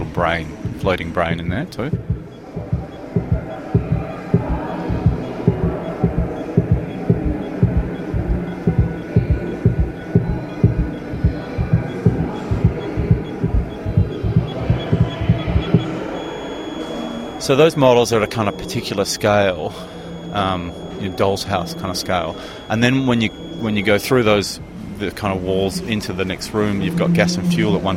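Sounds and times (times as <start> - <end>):
heartbeat played inside a doll's-house-scale model cabin: 0.0 - 16.7
murmur: 0.0 - 27.9
speech: 0.2 - 2.1, 17.5 - 27.9.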